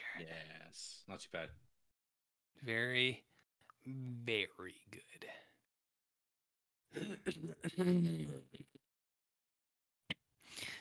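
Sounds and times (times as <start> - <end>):
speech: 0.2 - 1.7, 2.6 - 5.5, 6.9 - 8.8
person clearing throat: 6.9 - 8.4.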